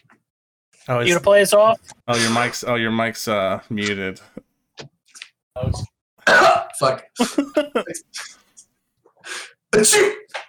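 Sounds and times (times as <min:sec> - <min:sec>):
speech: 0:00.8 - 0:04.4, 0:05.6 - 0:05.9, 0:06.8 - 0:08.4, 0:09.2 - 0:10.2
person faking a sneeze: 0:09.8 - 0:10.4.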